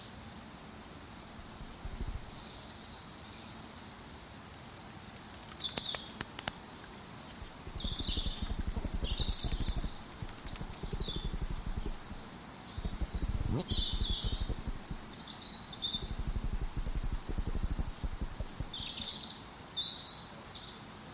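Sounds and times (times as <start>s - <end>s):
dawn chorus of several small birds chirping and twittering: 1.2s - 3.6s, 6.9s - 20.8s
rapid low clicking and crackling of bat calls: 1.4s - 2.4s, 7.4s - 15.2s, 15.7s - 19.1s.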